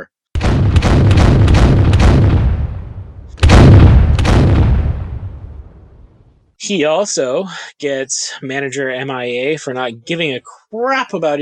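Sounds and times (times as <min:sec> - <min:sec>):
booming cannon blasts: 0:00.3 - 0:06.4
speech: 0:06.7 - 0:11.4.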